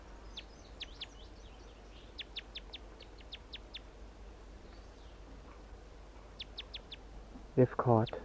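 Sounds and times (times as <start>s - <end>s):
wild male bird singing from a sapling near a mist net: 0.0s - 3.9s, 4.6s - 5.4s, 6.2s - 7.1s, 7.9s - 8.2s
steady low outdoor rumble: 0.0s - 8.2s.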